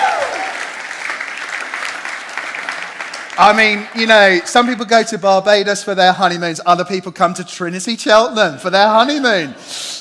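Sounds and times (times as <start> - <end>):
room full of people applauding newlyweds: 0.0 - 4.8
speech: 3.4 - 9.9.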